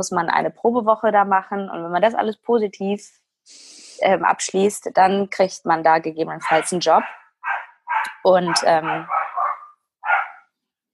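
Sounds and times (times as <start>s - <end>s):
speech: 0.0s - 7.6s, 8.2s - 9.2s
dog barking: 6.4s - 10.5s.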